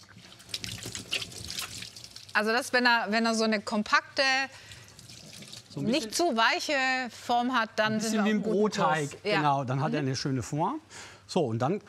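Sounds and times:
hands washing under running water: 0.0s - 2.4s, 4.6s - 5.8s
running tap water: 0.0s - 2.7s, 4.6s - 6.1s
speech: 2.4s - 4.7s, 5.8s - 11.8s.

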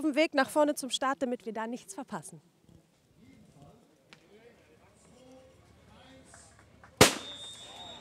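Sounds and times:
speech: 0.0s - 2.6s
murmuring voices and crowd chatter: 3.2s - 7.9s
starting pistol shot at bicycle race start: 7.0s - 7.4s.

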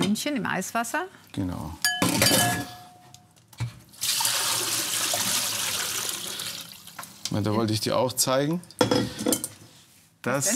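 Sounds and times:
speech: 0.2s - 2.8s, 7.3s - 9.4s, 10.2s - 10.5s
water poured off cooked vegetables: 3.9s - 7.1s.

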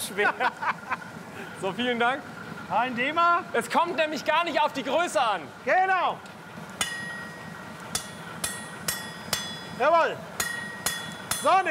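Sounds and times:
laughter: 0.0s - 1.6s
speech: 0.1s - 6.4s, 9.8s - 10.3s, 11.4s - 11.7s
hammer striking hot iron on an anvil: 6.8s - 11.7s.

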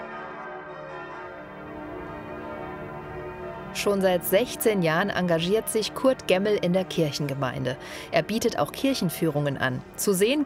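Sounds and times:
church bells of the Martinskirche in Martinshöhe ringing: 0.0s - 10.4s
speech: 3.8s - 10.4s.

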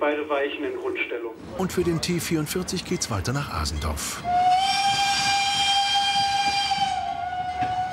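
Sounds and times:
speech: 0.1s - 4.9s
steam train whistle blast at Heiligenberg: 4.2s - 7.9s
steam train hiss at Heiligenberg: 4.3s - 7.2s.

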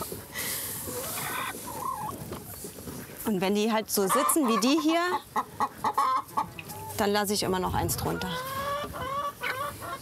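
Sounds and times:
hens clucking and crooning in a henhouse: 0.0s - 9.9s
speech: 3.3s - 5.8s, 7.0s - 8.6s.

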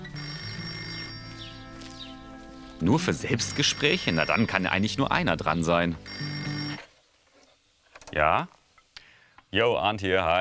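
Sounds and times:
telephone bell ringing in the village of Deuselbach: 0.0s - 1.9s, 3.3s - 4.8s, 6.0s - 6.9s
speech: 2.8s - 6.3s, 8.2s - 8.6s, 9.5s - 10.3s.

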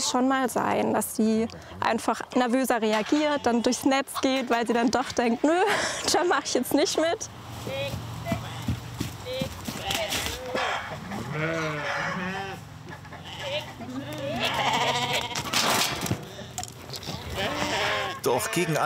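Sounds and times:
speech: 0.0s - 8.0s, 11.4s - 12.2s, 18.2s - 18.8s
outdoor noise: 0.0s - 18.8s
several sheep bleating: 3.0s - 3.9s, 8.3s - 15.5s, 16.1s - 18.8s
faint trampling or hoof-like knocks: 7.8s - 11.5s, 12.9s - 18.1s.

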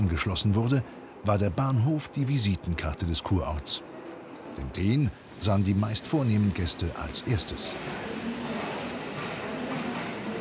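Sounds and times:
speech: 0.2s - 3.9s, 4.6s - 8.1s
museum locomotive pulling a train into Karlsbad station: 3.8s - 10.3s.

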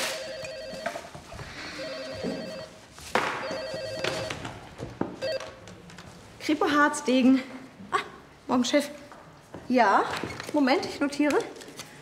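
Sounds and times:
telephone ringing with electronic trills: 0.0s - 1.1s, 1.7s - 2.8s, 3.4s - 4.6s, 5.2s - 5.6s
speech: 6.4s - 7.6s, 8.5s - 9.0s, 9.7s - 11.6s.

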